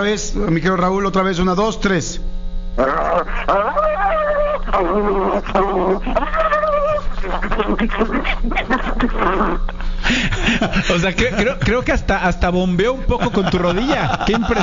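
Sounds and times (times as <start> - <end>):
speech: 0.0 - 6.5, 7.2 - 14.6
steady hum: 0.0 - 14.6
man imitating a dog with yelps and barks: 2.8 - 9.6
laughter: 5.1 - 12.2, 12.9 - 14.6.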